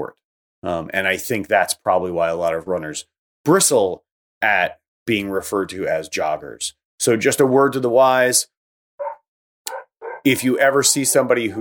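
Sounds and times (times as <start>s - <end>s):
speech: 0.0s - 8.6s, 10.2s - 11.6s
dogs barking somewhere else in the house: 9.0s - 11.3s.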